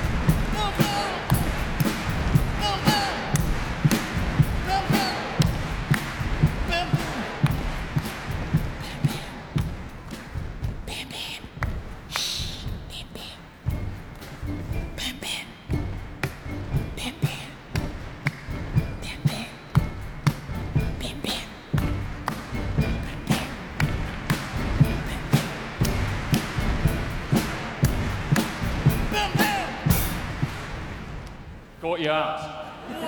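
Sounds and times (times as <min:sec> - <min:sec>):
hands drumming on boxes with dull low booms: 0:00.0 - 0:15.1, 0:15.7 - 0:31.6.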